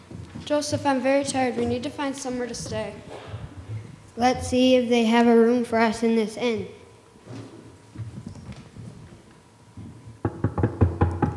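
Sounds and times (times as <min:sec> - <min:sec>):
speech: 0:00.5 - 0:03.3, 0:04.2 - 0:06.8
knocking on a door: 0:10.2 - 0:11.3.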